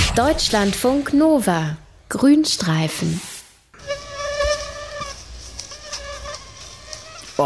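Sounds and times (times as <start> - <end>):
speech: 0.1 - 3.3
mosquito buzzing: 3.7 - 7.4.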